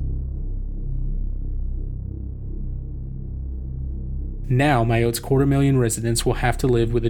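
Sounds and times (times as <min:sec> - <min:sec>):
seismic hum of a contracting magma pocket off Mayotte: 0:00.0 - 0:07.0
speech: 0:04.5 - 0:07.0.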